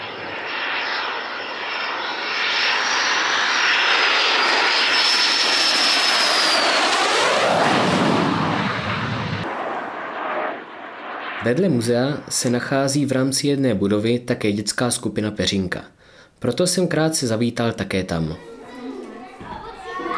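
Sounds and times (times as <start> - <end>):
L-159 Alca jet fighter flying overhead: 0.0 - 13.1
speech: 11.4 - 18.5.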